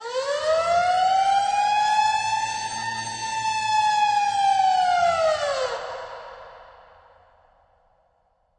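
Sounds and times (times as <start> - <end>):
siren: 0.0 - 6.6.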